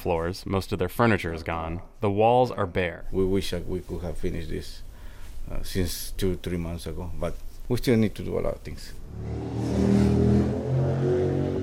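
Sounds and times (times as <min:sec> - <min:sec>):
speech: 0:00.0 - 0:04.9, 0:05.5 - 0:10.1
car engine revving and accelerating on a busy main street on a hot dry summer day: 0:09.0 - 0:11.6.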